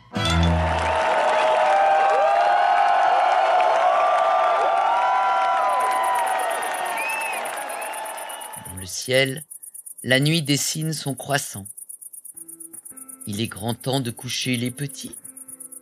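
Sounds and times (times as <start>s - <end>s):
crowd applause under a circus tent: 0.3s - 8.8s
speech: 9.1s - 11.8s, 13.3s - 15.2s.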